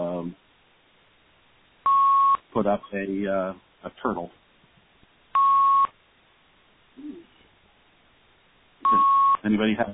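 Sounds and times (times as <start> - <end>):
electronic beep on a phone line: 1.9 - 2.4, 5.4 - 5.9, 8.8 - 9.4
speech: 2.6 - 4.4, 9.4 - 9.9
faint murmur on a phone line: 7.0 - 7.5.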